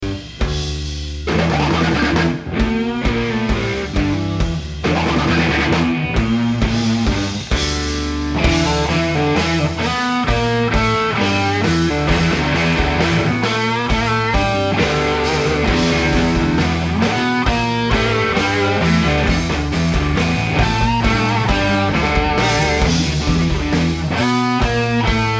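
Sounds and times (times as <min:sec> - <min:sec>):
machine gun instrumental music: 0:00.1 - 0:25.3.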